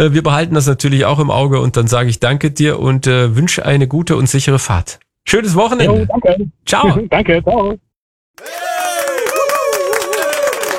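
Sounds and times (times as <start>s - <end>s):
speech: 0.0s - 7.8s, 8.4s - 8.8s
crowd cheering voices: 8.4s - 10.7s
crowd clapping: 8.4s - 10.7s.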